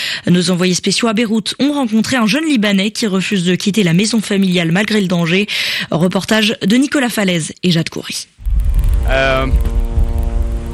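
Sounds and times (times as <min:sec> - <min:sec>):
speech: 0:00.2 - 0:09.8
steady droning buzz overhead: 0:08.4 - 0:10.7.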